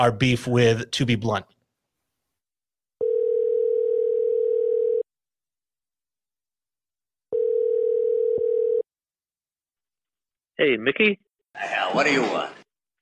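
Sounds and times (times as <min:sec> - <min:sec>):
speech: 0:00.0 - 0:01.6, 0:10.6 - 0:12.6
phone ringback tone on a recorded call: 0:03.0 - 0:05.1, 0:07.3 - 0:08.9.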